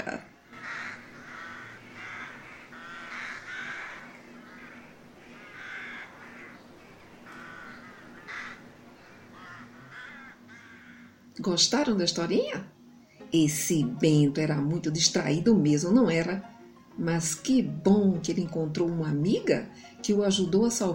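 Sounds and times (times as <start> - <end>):
speech: 0.0 - 0.3, 11.4 - 20.9
crow cawing: 0.5 - 11.3.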